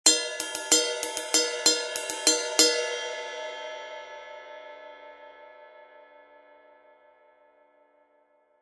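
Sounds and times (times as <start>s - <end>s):
20 inch ride cymbal ping: 0.1s - 3.9s.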